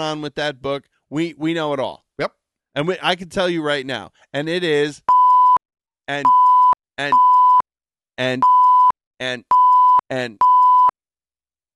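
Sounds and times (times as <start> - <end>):
speech: 0.0 - 5.1, 6.1 - 6.4, 7.0 - 7.3, 8.2 - 8.6, 9.2 - 10.4
security system beeps: 6.2 - 7.6, 8.4 - 8.9, 9.5 - 10.9.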